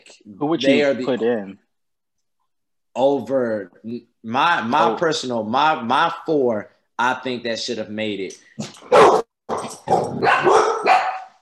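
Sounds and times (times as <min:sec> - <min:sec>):
speech: 0:00.2 - 0:01.6, 0:03.0 - 0:09.2
dogs barking: 0:08.8 - 0:11.4.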